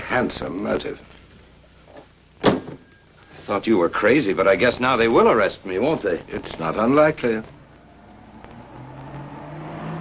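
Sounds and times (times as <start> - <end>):
speech: 0.1 - 1.2, 3.5 - 7.6
police car engine humming as it pulls up in the street: 4.4 - 9.9.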